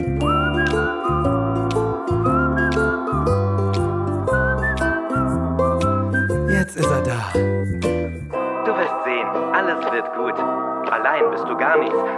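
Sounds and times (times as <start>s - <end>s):
person whistling a bright bouncy melody: 0.0s - 8.2s
steady musical backing: 0.0s - 12.1s
speech: 11.2s - 12.1s.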